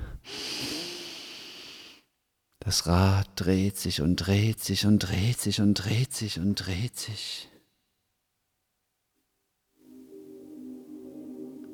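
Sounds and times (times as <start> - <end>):
breath drawn in: 0.0 - 2.1
speech: 2.6 - 7.5.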